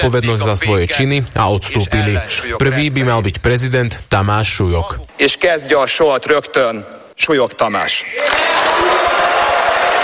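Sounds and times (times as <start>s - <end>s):
speech: 0.0s - 9.1s
large outdoor crowd applauding and cheering: 8.2s - 10.0s.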